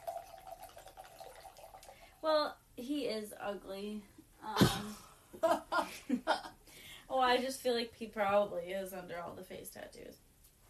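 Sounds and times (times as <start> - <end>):
wine pouring into a glass: 0.0 - 2.2
speech: 2.2 - 6.5, 7.1 - 10.2.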